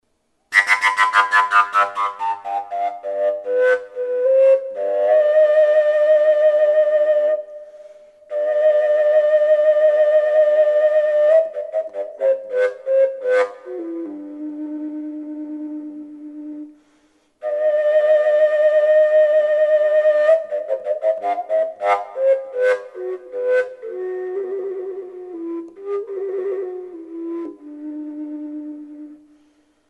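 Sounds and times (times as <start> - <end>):
collapsible G fujara from Slovakia: 0.5 - 29.8.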